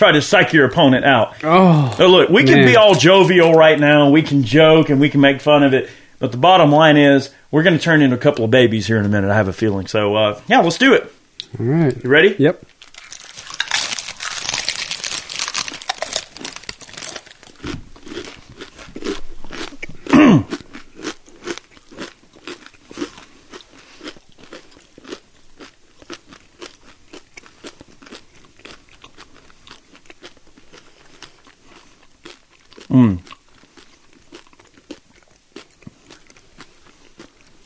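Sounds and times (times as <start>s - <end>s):
speech: 0.0s - 12.7s
chewing and crunching food: 12.7s - 37.6s.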